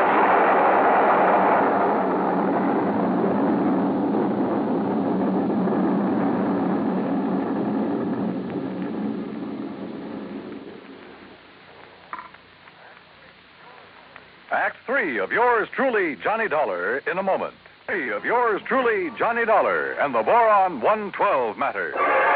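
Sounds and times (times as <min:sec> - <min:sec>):
laboratory building exploding: 0:00.0 - 0:11.4
speech: 0:14.9 - 0:22.2.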